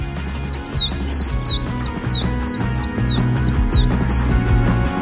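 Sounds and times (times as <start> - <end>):
bird chirping: 0.0 - 4.9.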